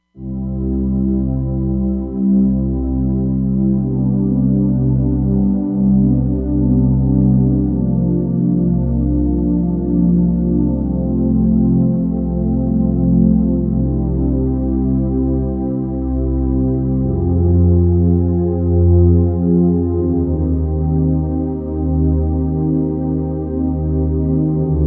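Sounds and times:
Roland Fantom XR soft synth pad: 0.1 - 24.8.

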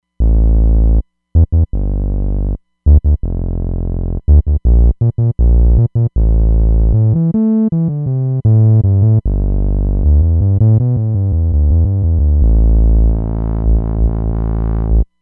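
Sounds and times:
synthesizer R&B music: 1.4 - 15.1.

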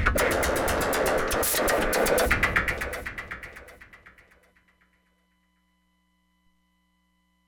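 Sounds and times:
Roland Fantom XR synthesizer corrugated sound: 0.2 - 4.2.

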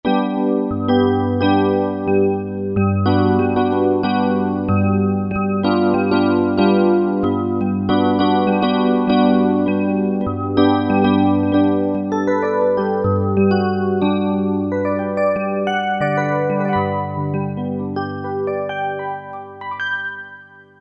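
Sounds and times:
Korg M1 E.Piano 3 electric piano: 0.0 - 20.7.

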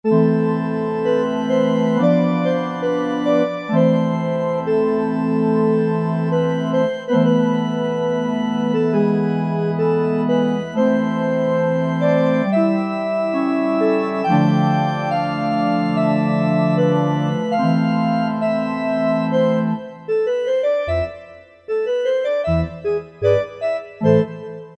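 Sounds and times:
soft pipe organ on an Alesis QS8: 0.1 - 24.7.

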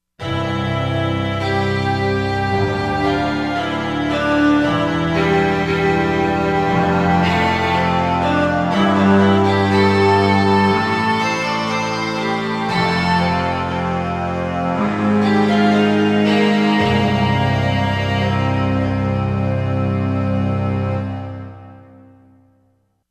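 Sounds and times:
Buzu strings on Korg MSC-13S Ethnic 2 synthesizer: 0.2 - 22.4.

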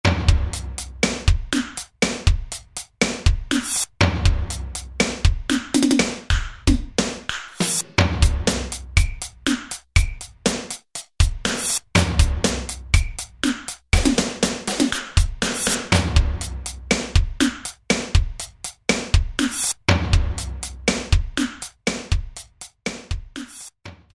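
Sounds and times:
techno preset pattern on an Alesis SR-16 drum machine: 0.0 - 24.1.

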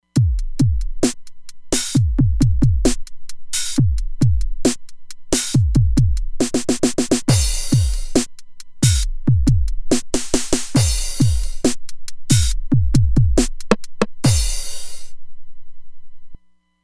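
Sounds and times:
Roland Fantom XR electronic drums: 0.0 - 15.1.

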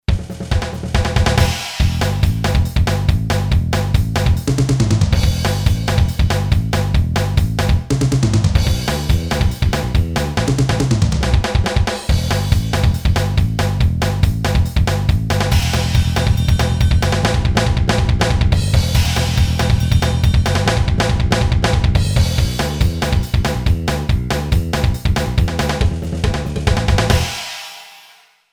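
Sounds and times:
fast rock beat on Boss DR-3: 0.0 - 28.2.

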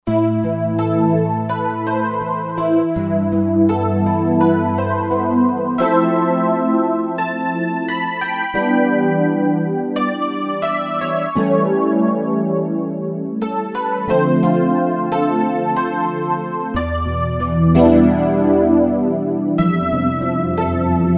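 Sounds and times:
Roland JV-2080 synthesizer electric piano patch: 0.0 - 21.1.

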